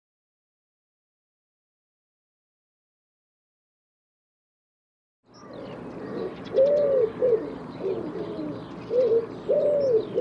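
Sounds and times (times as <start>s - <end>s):
bird cooing: 5.4s - 10.2s.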